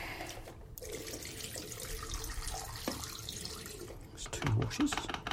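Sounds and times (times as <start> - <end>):
tap water running in a cold bathroom for a rinse: 0.1 - 4.0
speech: 4.7 - 5.2.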